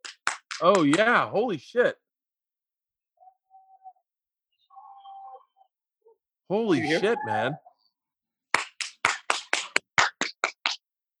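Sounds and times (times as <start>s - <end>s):
people clapping from rooftops: 0.0s - 1.2s, 8.5s - 10.8s
speech: 0.6s - 2.0s, 6.5s - 7.6s.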